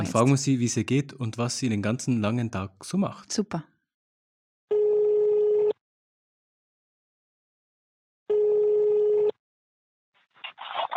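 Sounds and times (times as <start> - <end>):
speech: 0.0 - 3.7
ringback tone of an outgoing telephone call: 4.7 - 5.8, 8.3 - 9.3.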